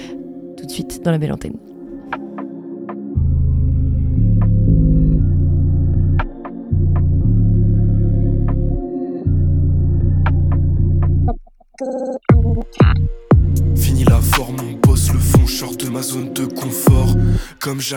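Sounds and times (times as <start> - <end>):
speech: 0.6 - 1.7, 17.7 - 17.9
deep throbbing bass chords in an instrumental single intro: 3.2 - 11.4, 12.3 - 15.7, 16.9 - 17.5.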